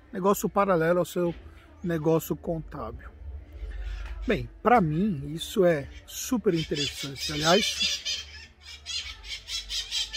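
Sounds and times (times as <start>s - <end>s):
speech: 0.1s - 3.2s, 4.2s - 8.2s
low rumble: 1.4s - 6.0s
parakeet-like bird squawking: 5.7s - 10.1s.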